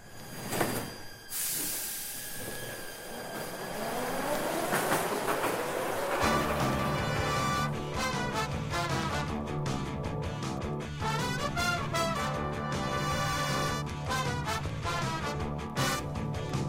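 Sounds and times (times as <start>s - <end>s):
metro train running on rails: 0.0s - 16.6s
metro train wheel clatter: 4.2s - 7.6s.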